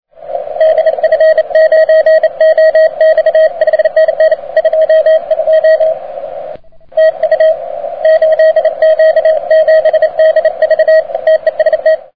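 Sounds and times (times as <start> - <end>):
ham radio reception on 80m with beverage antenna: 0.2 - 12.1.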